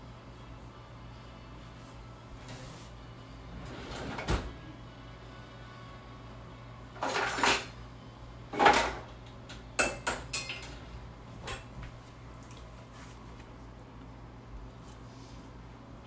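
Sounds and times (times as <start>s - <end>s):
cupboard doors opening and shutting: 3.5s - 4.6s
drawers opening and shutting: 3.5s - 4.6s, 7.0s - 7.7s, 8.5s - 9.1s
dishes and cutlery clattering: 7.0s - 7.8s, 8.6s - 9.1s, 9.8s - 11.7s.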